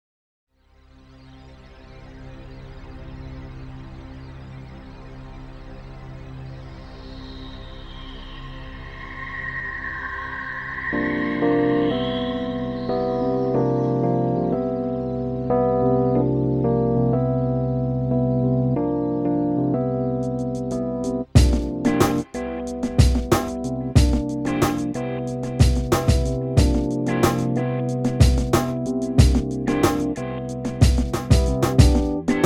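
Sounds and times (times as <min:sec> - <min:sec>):
moody chilled lo-fi keys: 0:10.8 - 0:32.4.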